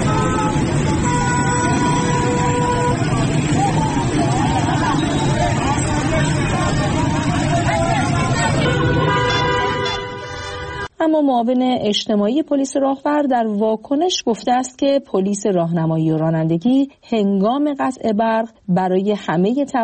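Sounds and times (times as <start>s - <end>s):
car horns honking: 0.0s - 3.6s, 4.8s - 10.9s
dense street traffic in an Iranian city during a power cut: 0.0s - 11.0s
murmur of crowd voices: 2.8s - 10.1s
speech: 11.2s - 19.8s.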